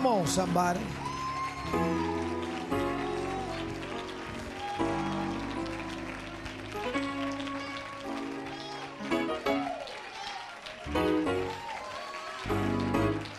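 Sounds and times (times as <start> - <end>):
loud keyboard or organ chords: 0.0 - 9.7, 10.9 - 11.6, 12.5 - 13.3
church audience clapping in praise: 0.0 - 13.3.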